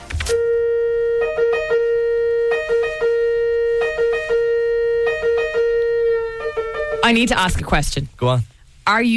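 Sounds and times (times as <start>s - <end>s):
Italian ambulance siren: 0.2s - 7.4s
speech: 7.1s - 9.1s.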